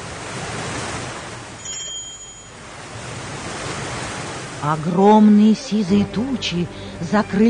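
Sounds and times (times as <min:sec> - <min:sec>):
stormy sea roaring around a rocking ship: 0:00.0 - 0:05.4
speech: 0:04.6 - 0:07.4.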